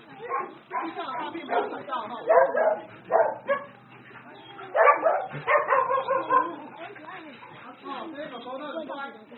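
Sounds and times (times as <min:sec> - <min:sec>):
dogs barking and whimpering in a kennel: 0:00.2 - 0:07.6.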